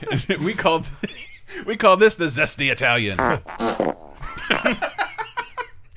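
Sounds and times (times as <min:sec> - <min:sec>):
speech: 0:00.0 - 0:05.0
homegrown fart sounds: 0:03.1 - 0:04.2
laughter: 0:04.2 - 0:05.8.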